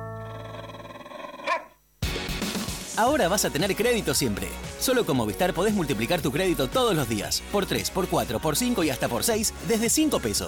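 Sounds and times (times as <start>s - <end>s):
processed dog bark in a radio station jingle: 0.9s - 1.8s
speech: 3.0s - 10.4s.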